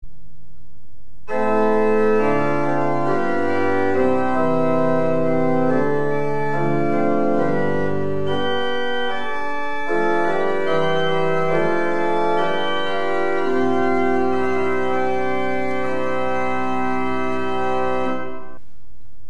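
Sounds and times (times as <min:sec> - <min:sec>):
pipe organ with Prestant 8', Octaaf 4', Quint and Octaaf 2' stops: 0:01.3 - 0:18.6.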